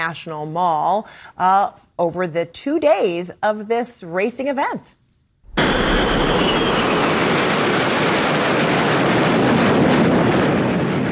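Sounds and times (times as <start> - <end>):
speech: 0.0 - 5.0
aircraft flyover jet roar above a street race: 5.5 - 11.1.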